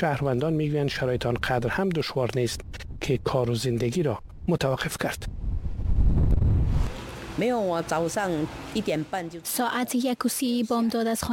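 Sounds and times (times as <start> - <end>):
speech: 0.0 - 5.4, 7.4 - 11.3
strong typhoon wind at about 100 km per hour in Taipei, Taiwan: 2.4 - 7.0.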